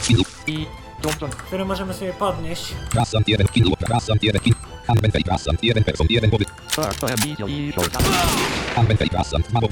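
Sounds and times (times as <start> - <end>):
speech: 0.1 - 9.7
rifle firing two quick shots in a video game: 7.2 - 8.8.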